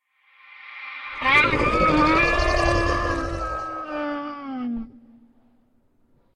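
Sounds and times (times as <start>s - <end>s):
hounds roaring: 1.2s - 4.1s.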